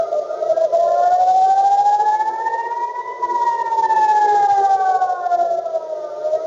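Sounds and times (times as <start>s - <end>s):
air raid warning siren wailing: 0.0s - 6.4s.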